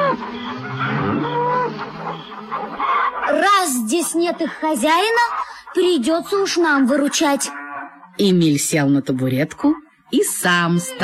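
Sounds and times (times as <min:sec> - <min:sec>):
cows mooing loudly: 0:00.0 - 0:03.6, 0:05.2 - 0:08.3
speech: 0:03.4 - 0:07.6, 0:08.2 - 0:11.0.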